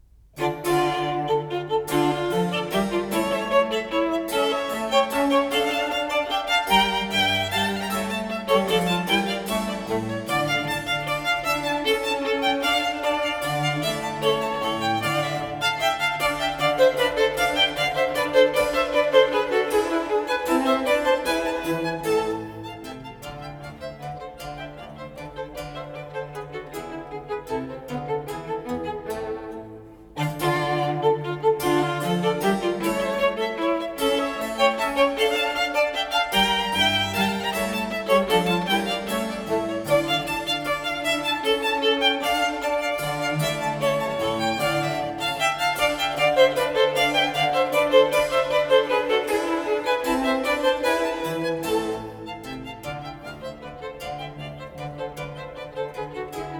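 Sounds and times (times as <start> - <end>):
trio sonata in D minor for 2 violins and basso continuo: 0.4 - 56.5.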